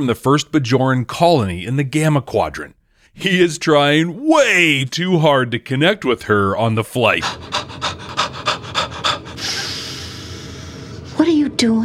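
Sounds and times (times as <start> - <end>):
speech: 0.0 - 7.6, 11.2 - 11.8
rapid forceful bellows breathing: 7.0 - 11.2.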